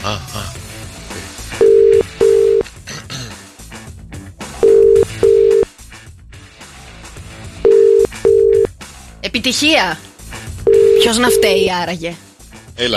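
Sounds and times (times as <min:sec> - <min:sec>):
speech: 0:00.0 - 0:00.6, 0:09.3 - 0:10.1, 0:10.7 - 0:12.2, 0:12.8 - 0:12.9
telephone line tone beeps: 0:01.6 - 0:02.6, 0:04.6 - 0:05.7, 0:07.7 - 0:08.7, 0:10.7 - 0:11.6.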